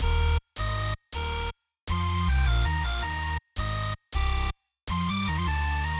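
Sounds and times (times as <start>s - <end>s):
hyperpop beat: 0.0s - 0.4s
bassline: 0.0s - 5.9s.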